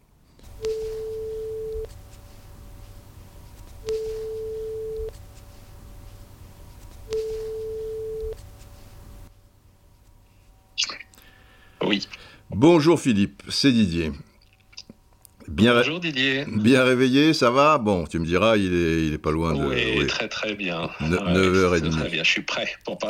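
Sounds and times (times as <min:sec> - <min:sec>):
hissy phone line: 0:00.5 - 0:02.0, 0:03.8 - 0:05.2, 0:07.0 - 0:08.5
ringback tone of an outgoing phone call: 0:00.6 - 0:01.9, 0:03.8 - 0:05.1, 0:07.1 - 0:08.4
speech: 0:12.6 - 0:14.3, 0:15.6 - 0:23.0.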